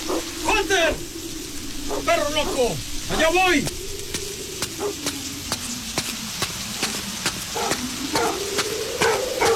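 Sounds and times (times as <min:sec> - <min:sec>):
crackling sizzling noise with scattered clicks: 0:00.0 - 0:09.5
dog barking: 0:07.6 - 0:08.4, 0:09.0 - 0:09.5.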